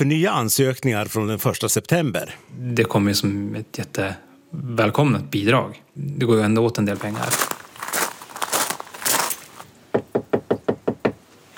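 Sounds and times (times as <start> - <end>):
speech: 0.0 - 7.5
rustling and handling noise: 6.9 - 9.7
reporter knocking on a family house door outside Östersund: 9.9 - 11.2.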